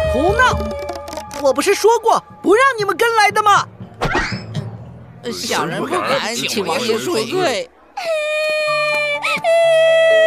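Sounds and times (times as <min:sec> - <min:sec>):
speech: 0:00.2 - 0:04.3, 0:05.2 - 0:08.3
child crying: 0:08.0 - 0:10.2.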